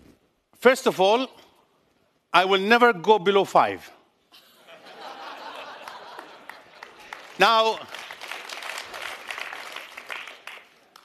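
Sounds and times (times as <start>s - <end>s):
speech: 0.6s - 1.4s, 2.3s - 4.0s, 7.4s - 8.0s
laughter: 4.3s - 7.2s
audience applause: 5.4s - 11.0s.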